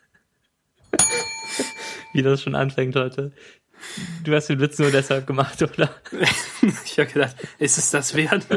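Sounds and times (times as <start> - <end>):
bell being struck: 1.0 - 2.5
speech: 1.5 - 8.5
laughter: 4.8 - 8.5.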